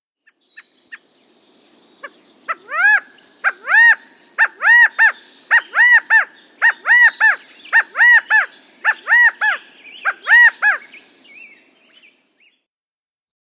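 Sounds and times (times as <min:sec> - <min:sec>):
faint high hiss: 0:00.3 - 0:10.1, 0:10.8 - 0:12.6
California quail calling: 0:02.5 - 0:10.9.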